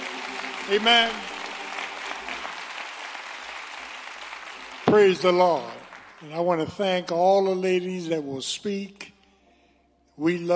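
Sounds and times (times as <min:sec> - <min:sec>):
audience applause: 0:00.0 - 0:06.3
speech: 0:00.7 - 0:01.3, 0:04.9 - 0:09.1, 0:10.2 - 0:10.5.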